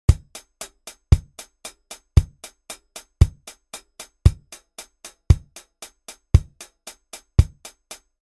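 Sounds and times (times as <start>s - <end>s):
kick drum: 0.1s - 1.5s, 2.2s - 2.5s, 3.2s - 3.6s, 4.2s - 4.6s, 5.3s - 5.6s, 6.3s - 6.6s, 7.4s - 7.6s
hi-hats: 0.1s - 8.2s.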